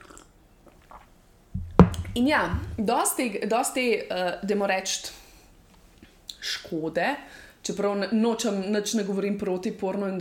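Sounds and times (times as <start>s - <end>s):
person sipping a drink: 0.0s - 1.1s
speech: 2.2s - 5.2s, 6.4s - 10.1s.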